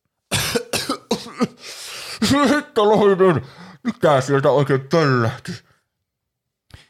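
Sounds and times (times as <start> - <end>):
harsh coughing in a room: 0.3 - 3.2
speech: 2.3 - 5.7.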